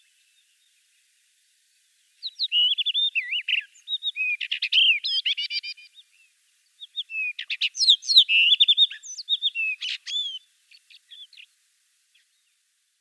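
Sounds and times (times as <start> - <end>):
common rock thrush Monticola saxatilis in full song: 2.2 - 12.6.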